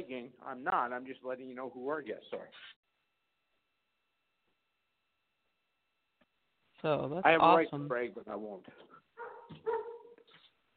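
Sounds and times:
speech: 0:00.2 - 0:02.9, 0:06.8 - 0:09.8
dog barking in a hallway: 0:09.2 - 0:10.3.

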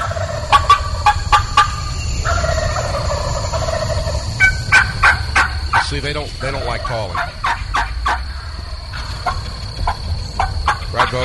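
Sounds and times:
airplane passing over: 0:00.0 - 0:11.2
wild turkey gobbling at daylight on a ranch in Florida: 0:00.0 - 0:11.2
speech: 0:05.9 - 0:07.4.

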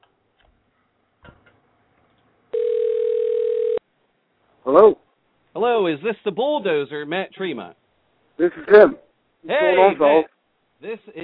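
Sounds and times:
telephone dial tone while a call is being placed: 0:02.5 - 0:03.8
speech: 0:04.7 - 0:05.0, 0:05.6 - 0:07.8, 0:08.4 - 0:11.2.

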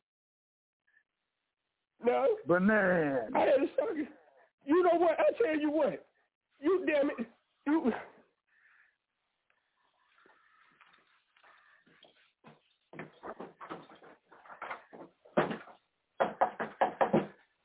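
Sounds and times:
speech: 0:02.1 - 0:08.1
loud knocking on a door: 0:15.4 - 0:17.4.

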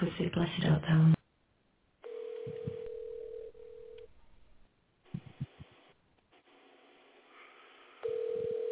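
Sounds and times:
speech: 0:00.0 - 0:01.2
telephone line dial tone: 0:02.0 - 0:04.1, 0:08.0 - 0:08.7.

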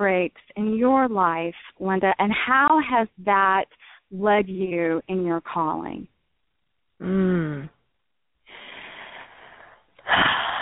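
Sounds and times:
speech: 0:00.0 - 0:06.1, 0:07.0 - 0:07.8, 0:10.1 - 0:10.6
person taking a deep breath: 0:08.5 - 0:10.6.

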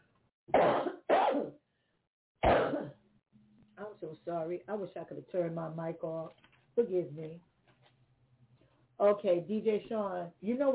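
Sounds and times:
person coughing harshly: 0:00.5 - 0:01.6, 0:02.4 - 0:03.0
speech: 0:04.1 - 0:07.5, 0:09.0 - 0:10.7.

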